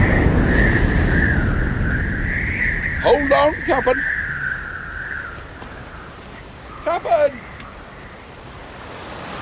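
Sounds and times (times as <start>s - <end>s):
large wave crashing over a boat: 0.0s - 4.1s
high whistle of wind above a stormy sea: 0.0s - 9.3s
speech: 3.1s - 4.2s.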